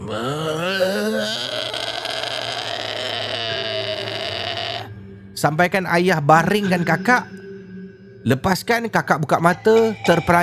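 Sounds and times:
voice imitating a person's guttural groaning: 0.0 - 4.9
speech: 0.1 - 0.5, 5.4 - 7.4, 8.2 - 10.4.

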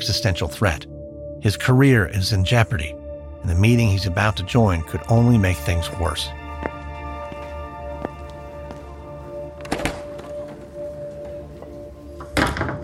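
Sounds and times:
speech: 0.0 - 6.4
heavy door thud: 9.6 - 10.3.

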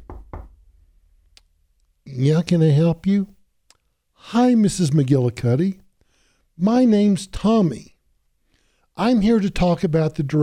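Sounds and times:
firm heavy knocks on a door: 0.0 - 0.6
speech: 2.2 - 3.4, 4.2 - 5.8, 6.6 - 7.9, 9.0 - 10.4.

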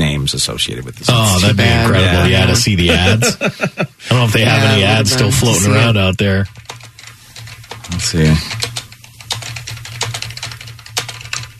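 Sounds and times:
low electrical hum: 0.0 - 11.5
speech: 0.2 - 6.6, 7.9 - 8.6
laughter: 1.1 - 6.0
rapid typing on a computer keyboard: 6.5 - 11.5.

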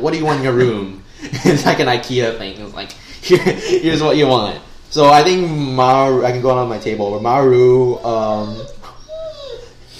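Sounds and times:
speech: 0.0 - 8.8
dog whining indoors with throaty whimper and high-pitched whine: 8.0 - 9.9.

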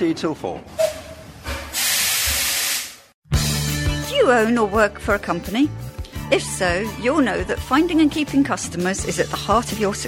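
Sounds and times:
speech: 0.0 - 0.9, 4.2 - 10.0
steam locomotive at a steam museum railway in Hanworth hissing steam: 1.7 - 3.0.

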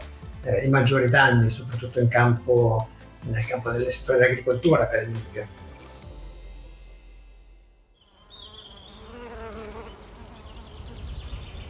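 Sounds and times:
speech: 0.4 - 5.6
bees buzzing: 8.1 - 11.6.

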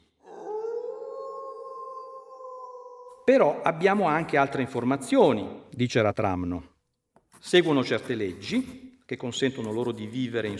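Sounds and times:
dog howling: 0.2 - 3.2
speech: 3.2 - 6.7, 7.4 - 10.5.

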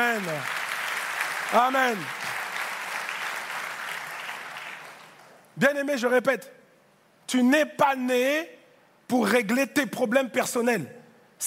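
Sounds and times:
church congregation applauding: 0.0 - 5.5
speech: 1.5 - 2.3, 5.6 - 6.6, 7.3 - 11.4.

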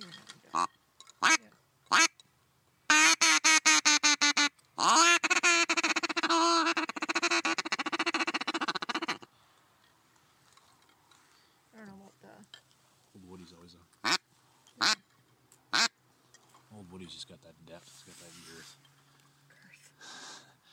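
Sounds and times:
mallard duck call quacking for duck hunting: 0.5 - 2.1, 2.9 - 9.3, 14.0 - 14.2, 14.8 - 15.0, 15.7 - 15.9.

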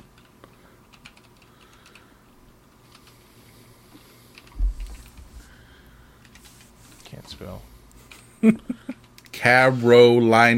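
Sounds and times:
fingers typing on a computer keyboard: 0.0 - 2.1, 2.9 - 3.2, 4.3 - 5.2
speech: 7.2 - 7.7, 8.4 - 10.5.

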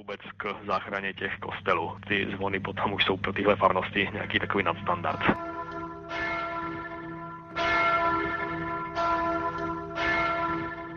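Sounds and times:
person talking: 0.0 - 5.4
low hum: 0.0 - 10.9
church bell ringing: 4.6 - 10.9.

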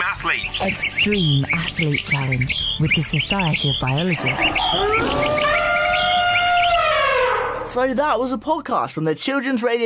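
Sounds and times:
speech: 0.2 - 5.6, 7.7 - 9.8
wolf howling: 4.2 - 7.7.

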